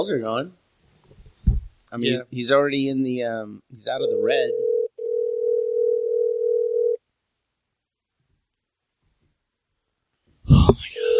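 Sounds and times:
speech: 0.0s - 0.6s, 1.4s - 4.6s
telephone dial tone while placing a call: 4.1s - 7.0s.

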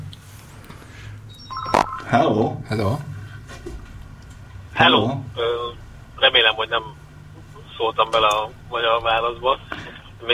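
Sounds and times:
low hum: 0.0s - 10.3s
electronic phone-line tone as incoming call connects: 1.3s - 2.4s
speech: 2.1s - 3.1s, 4.8s - 7.0s, 7.8s - 10.3s.

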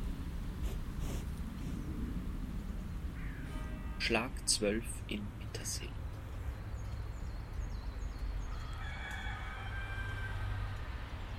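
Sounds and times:
low rumble: 0.0s - 11.3s
birds chirping: 0.8s - 10.4s
speech: 4.0s - 6.0s
rooster crowing: 8.4s - 11.1s.

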